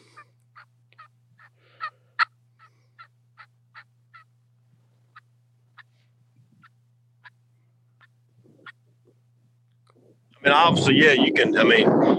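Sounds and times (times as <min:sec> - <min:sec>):
turkey hunting call yelping and clucking: 0:00.0 - 0:04.4, 0:05.1 - 0:05.9, 0:06.6 - 0:07.4
steady low hum: 0:00.0 - 0:12.1
speech: 0:10.4 - 0:12.1.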